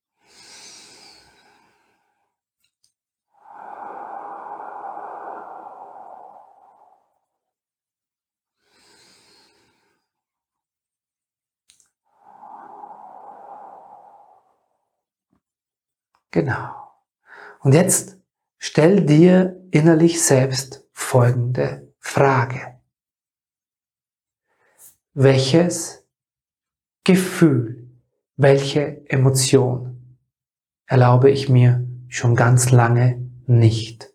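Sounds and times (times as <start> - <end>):
person breathing slowly in and out during an exercise: 0.1 - 7.5, 8.5 - 10.4, 11.7 - 15.0, 17.2 - 17.6
speech: 16.4 - 16.8, 17.6 - 22.7, 25.2 - 26.0, 27.1 - 27.8, 28.4 - 29.9, 30.9 - 34.1.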